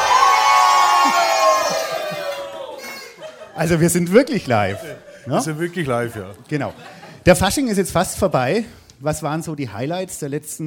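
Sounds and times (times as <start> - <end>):
live crowd cheering and shouting at a carnival-season gathering in Mehlmeisel: 0.0 - 3.2
laughter: 1.0 - 8.6
speech: 3.6 - 10.6.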